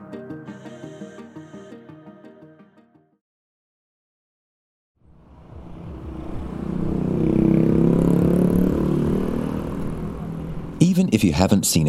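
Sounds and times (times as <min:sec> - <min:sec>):
short musical phrase: 0:00.0 - 0:03.1
motorbike and moped engines droning: 0:05.0 - 0:11.5
busy city traffic roar: 0:05.0 - 0:11.8
speech: 0:11.0 - 0:11.8.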